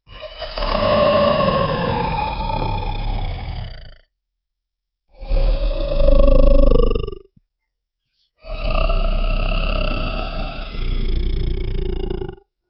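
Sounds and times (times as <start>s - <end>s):
frightening demonic creature sound: 0.1s - 4.0s, 5.2s - 7.2s, 8.4s - 12.4s.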